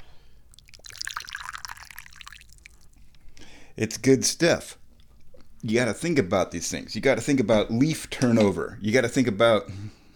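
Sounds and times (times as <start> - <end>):
tea pouring into a cup: 0.5 - 3.0
speech: 3.8 - 4.8, 5.6 - 10.0.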